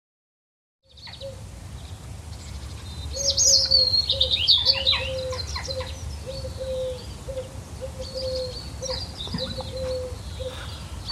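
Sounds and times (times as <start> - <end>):
steady outdoor hum: 0.8 - 11.0
birds chirping and trilling on a sunny day in the countryside: 0.9 - 11.0.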